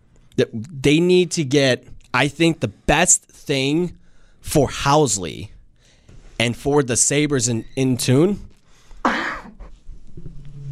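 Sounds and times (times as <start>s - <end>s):
speech: 0.4s - 5.5s, 6.4s - 8.5s
cough: 9.0s - 9.7s.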